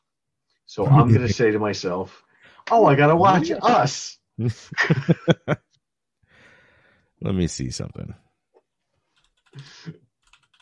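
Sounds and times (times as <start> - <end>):
speech: 0.7 - 5.6, 7.2 - 8.2, 9.6 - 10.0
laughter: 0.8 - 2.0, 2.8 - 5.6
typing on a computer keyboard: 9.1 - 10.6.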